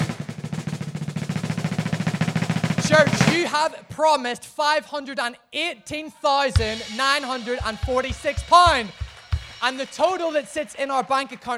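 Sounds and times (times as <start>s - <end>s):
fast steady drum roll: 0.0s - 3.6s, 6.6s - 11.5s
speech: 3.4s - 9.0s, 9.6s - 11.5s.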